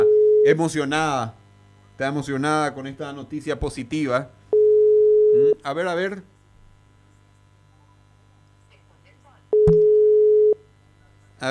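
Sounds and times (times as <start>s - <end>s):
steady telephone tone of a call that fails to connect: 0.0s - 0.6s, 4.5s - 5.6s, 9.5s - 10.7s
speech: 0.0s - 1.4s, 2.0s - 4.4s, 5.3s - 6.3s.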